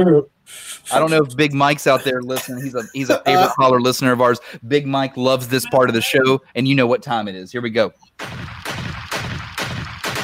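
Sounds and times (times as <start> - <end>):
speech: 0.0 - 8.4
laughter: 1.0 - 6.4
gunshot sound effects: 8.2 - 10.2.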